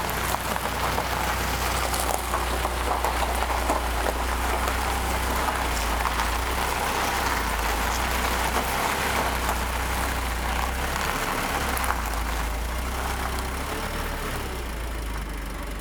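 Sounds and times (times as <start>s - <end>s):
heavy diesel aerial lift truck driving past in Aubusson: 0.0s - 15.8s.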